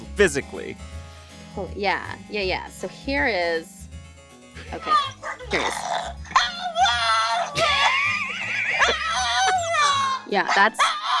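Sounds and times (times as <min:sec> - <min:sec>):
speech: 0:00.2 - 0:01.0, 0:01.6 - 0:03.8, 0:04.6 - 0:06.2, 0:10.3 - 0:11.0
pet screaming while being harassed: 0:04.7 - 0:11.1
laughter: 0:07.4 - 0:11.1.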